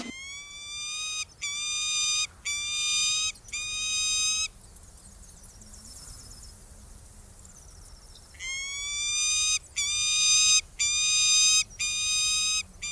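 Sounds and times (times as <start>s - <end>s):
peregrine falcon calling: 0.0s - 4.5s, 8.4s - 12.9s.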